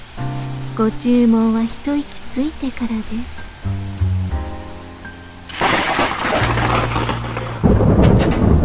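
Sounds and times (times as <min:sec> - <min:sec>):
steady rain: 0:00.0 - 0:08.6
speech: 0:00.8 - 0:03.8
loud thunder crack from a nearby lightning strike: 0:06.4 - 0:08.6.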